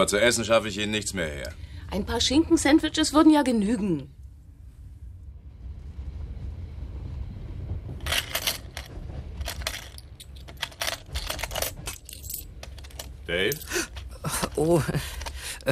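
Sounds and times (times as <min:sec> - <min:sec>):
speech: 0:00.0 - 0:04.2, 0:13.3 - 0:15.7
soft low rumble: 0:01.5 - 0:13.3
coins clinking and rattling while counted in a cash register: 0:08.0 - 0:15.7.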